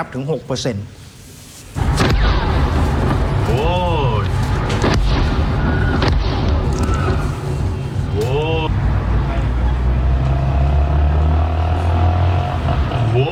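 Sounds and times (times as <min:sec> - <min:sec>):
speech: 0:00.0 - 0:01.0
heavy explosions in the city of Bandar Abbas in southern Iran: 0:01.8 - 0:11.0
constant loud roar: 0:01.8 - 0:13.2.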